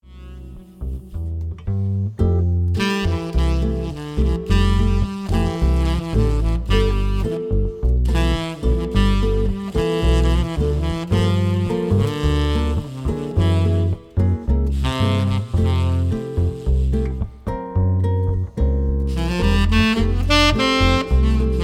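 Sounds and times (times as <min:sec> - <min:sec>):
trio playing music: 0:00.0 - 0:21.6.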